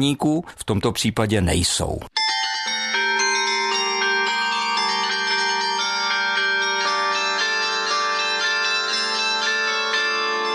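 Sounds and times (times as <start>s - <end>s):
speech: 0.0s - 2.3s
carillon bells playing a melody: 2.2s - 10.5s.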